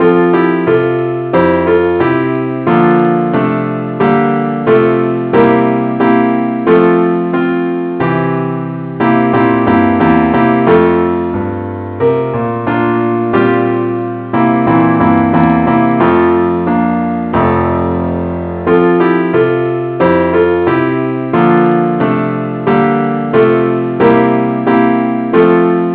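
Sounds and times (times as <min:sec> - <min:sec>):
keyboard in the key of F: 0:00.0 - 0:25.9.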